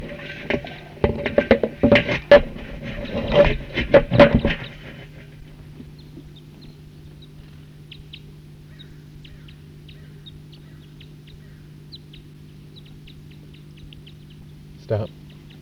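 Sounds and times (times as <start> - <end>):
small flock of type 2 birds flying and giving chip calls: 0.0 - 15.6.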